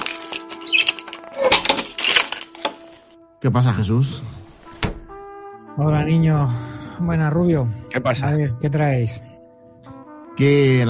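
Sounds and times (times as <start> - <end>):
door handle and lock clicking and rattling: 0.1 - 2.9
door opening: 0.3 - 2.8, 4.7 - 5.1
short high door squeak: 0.4 - 2.4
speech: 3.4 - 4.4, 5.8 - 9.3, 10.4 - 10.8.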